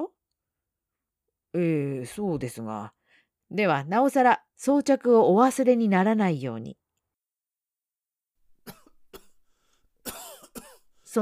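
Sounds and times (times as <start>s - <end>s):
speech: 1.5s - 6.8s
person coughing harshly: 8.6s - 9.4s, 10.0s - 10.9s.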